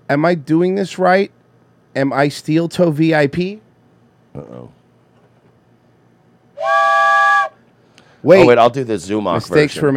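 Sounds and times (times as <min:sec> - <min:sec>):
speech: 0:00.1 - 0:01.4, 0:02.0 - 0:03.6, 0:04.4 - 0:04.8, 0:08.2 - 0:09.9
train whistle blast: 0:06.6 - 0:07.6.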